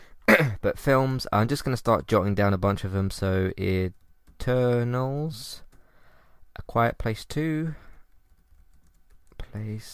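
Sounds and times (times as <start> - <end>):
speech: 0.6 - 5.6, 6.6 - 7.9, 9.5 - 9.9
typing on a computer keyboard: 8.1 - 9.5.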